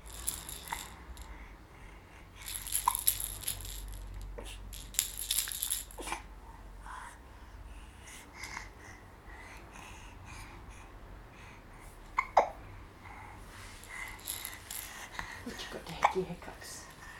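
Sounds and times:
soft hiss: 0:00.0 - 0:17.1
baby hiccuping: 0:12.2 - 0:12.6.

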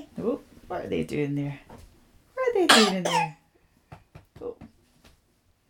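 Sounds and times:
speech: 0:00.2 - 0:01.7, 0:02.6 - 0:03.4
single sharp breathy cough: 0:02.7 - 0:03.3.

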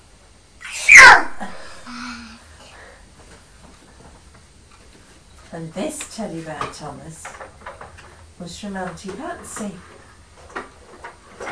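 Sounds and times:
person sneezing loudly: 0:00.6 - 0:02.4
speech: 0:05.6 - 0:07.4, 0:08.4 - 0:10.0.

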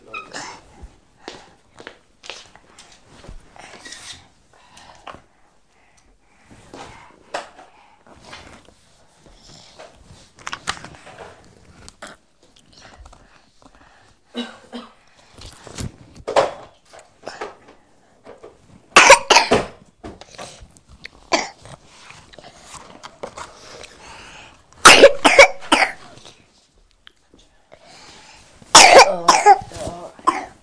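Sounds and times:
young child coughing: 0:14.3 - 0:15.0, 0:19.0 - 0:19.7, 0:21.3 - 0:21.6, 0:24.8 - 0:26.1, 0:28.7 - 0:30.6.

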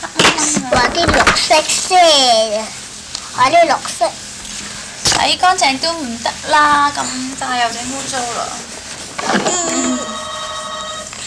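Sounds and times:
speech: 0:00.8 - 0:02.8, 0:03.4 - 0:04.2, 0:05.2 - 0:10.1
telephone ringing inside a home: 0:09.4 - 0:11.2.

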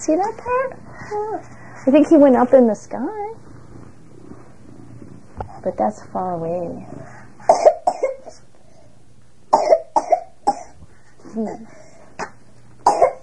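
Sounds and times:
speech: 0:00.0 - 0:03.4, 0:05.6 - 0:07.1, 0:11.4 - 0:11.8
child coughing: 0:07.5 - 0:08.3, 0:09.5 - 0:10.8, 0:11.4 - 0:13.2.

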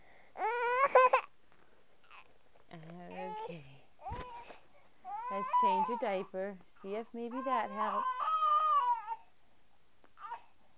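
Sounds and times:
baby whining and fussing: 0:00.4 - 0:01.3, 0:02.0 - 0:02.3, 0:03.1 - 0:06.3, 0:06.9 - 0:09.3, 0:10.2 - 0:10.6
speech: 0:05.6 - 0:08.2.

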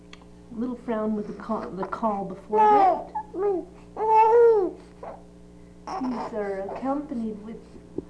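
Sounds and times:
speech: 0:00.5 - 0:04.8, 0:06.0 - 0:07.8
baby murmuring softly: 0:01.3 - 0:07.2
frowning baby being bathed making rough throat noises: 0:02.6 - 0:07.0.

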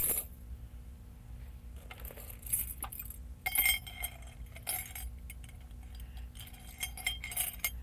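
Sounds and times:
low steady rumble: 0:00.0 - 0:07.8
metal keys jingling and clinking against a hard cup: 0:01.9 - 0:07.8.

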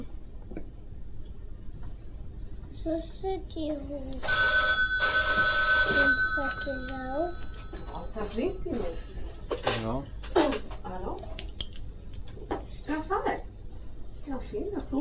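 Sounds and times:
speech: 0:02.8 - 0:04.6, 0:05.9 - 0:10.2, 0:10.9 - 0:11.3, 0:14.3 - 0:14.9
telephone ringing with a metallic bell trill: 0:04.2 - 0:09.2.

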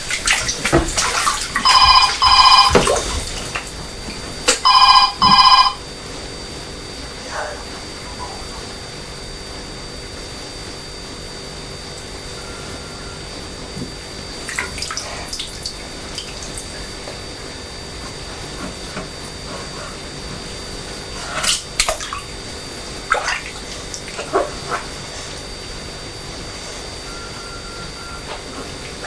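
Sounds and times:
child splashing water in a bathtub: 0:00.0 - 0:05.6, 0:14.4 - 0:17.0, 0:21.0 - 0:25.0
telephone ringing: 0:01.6 - 0:02.8, 0:04.6 - 0:05.8.

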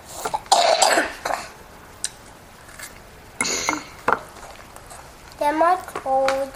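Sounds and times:
child coughing: 0:00.3 - 0:01.6, 0:03.4 - 0:03.9
speech: 0:06.1 - 0:06.5.

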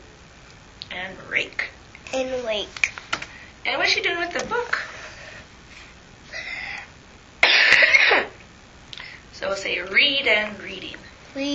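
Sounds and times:
speech: 0:01.0 - 0:02.9, 0:03.6 - 0:04.9, 0:09.4 - 0:11.5
person coughing: 0:07.4 - 0:08.4.

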